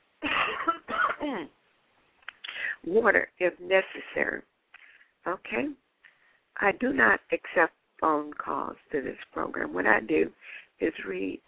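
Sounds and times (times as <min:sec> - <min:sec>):
adult coughing: 0:00.2 - 0:01.3
speech: 0:01.3 - 0:01.6, 0:02.8 - 0:04.5, 0:05.2 - 0:05.8, 0:06.6 - 0:11.4.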